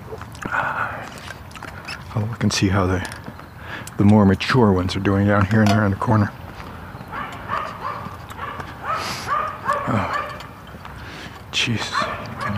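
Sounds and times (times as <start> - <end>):
steady outdoor noise: 0.0 - 12.5
speech: 2.2 - 3.2, 4.0 - 6.4, 11.6 - 12.0
small dog yapping in a residential neighborhood: 7.1 - 10.5, 12.0 - 12.5.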